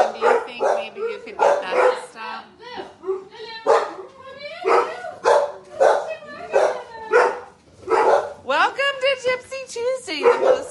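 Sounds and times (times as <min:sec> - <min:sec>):
dogs barking: 0:00.0 - 0:02.4, 0:03.0 - 0:08.4, 0:10.1 - 0:10.6.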